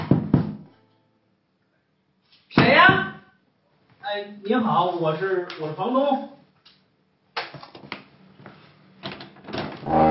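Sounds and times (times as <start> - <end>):
rattling knocks and thuds on a home door: 0.0 - 0.6
speech: 4.1 - 6.4.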